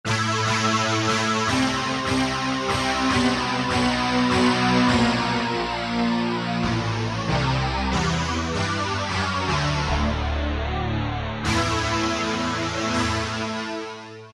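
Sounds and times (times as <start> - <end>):
distorted guitars: 0.0 - 14.3.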